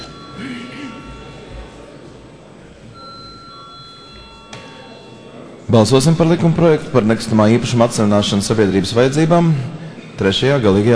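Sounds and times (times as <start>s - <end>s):
electric chamber bell ringing in a parliament hall before a vote: 0.0s - 2.0s, 2.9s - 8.1s
speech: 0.4s - 0.8s, 5.7s - 10.9s.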